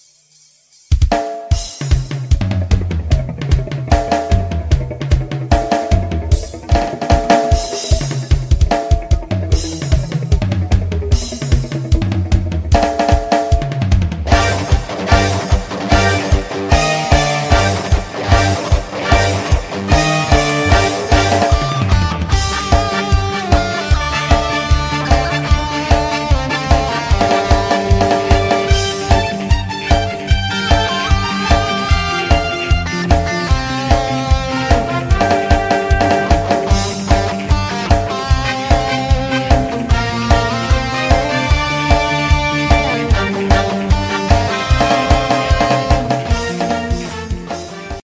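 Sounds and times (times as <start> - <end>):
full band playing programme opening music: 1.1 - 48.0.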